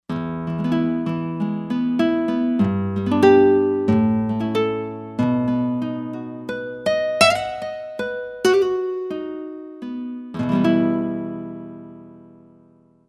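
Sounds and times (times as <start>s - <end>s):
nylon guitar patch on a synthesizer: 0.1s - 12.9s.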